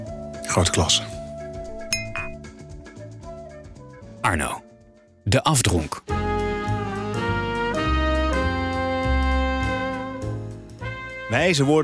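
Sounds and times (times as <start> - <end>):
soft steady music bed: 0.0 - 11.8
speech: 0.5 - 1.2, 4.3 - 4.6, 5.3 - 6.2, 11.3 - 11.8
whisky glass clinking: 1.7 - 2.4
whisky glass shimmering rattle: 1.7 - 2.4.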